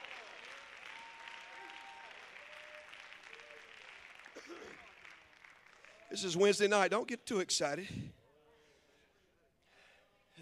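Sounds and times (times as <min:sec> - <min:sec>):
faint voices and cheers: 0:00.0 - 0:03.9
congregation clapping hands in applause: 0:00.0 - 0:07.0
speech: 0:04.5 - 0:04.9, 0:06.1 - 0:08.2.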